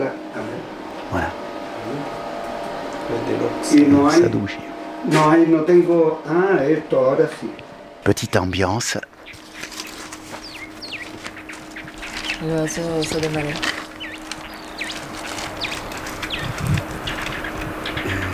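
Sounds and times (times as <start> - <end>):
steady low outdoor hum: 0.0 - 18.3
speech: 3.3 - 9.1, 12.4 - 13.7
small bird singing in the Elqui Valley Chile: 8.1 - 18.3.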